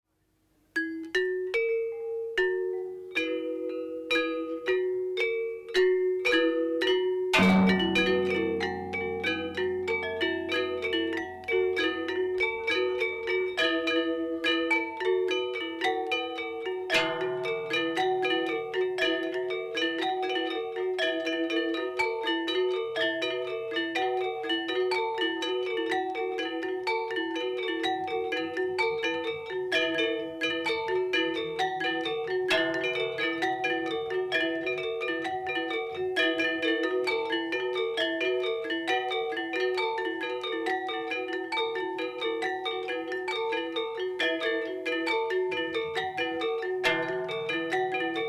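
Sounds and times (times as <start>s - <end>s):
Asak selunding gamelan music: 0.8s - 48.2s.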